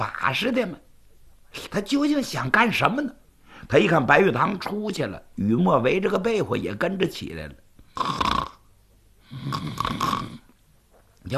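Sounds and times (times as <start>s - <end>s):
speech: 0.0s - 0.9s, 1.5s - 8.3s
child's snoring imitated by a voice: 7.9s - 8.6s, 9.2s - 10.5s.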